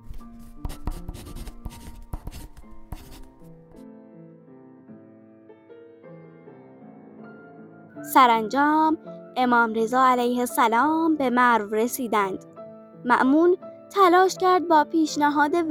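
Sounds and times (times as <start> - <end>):
many pens scratching on paper: 0.0 - 3.5
soft sustained gentle music: 0.0 - 15.6
speech: 8.0 - 15.6.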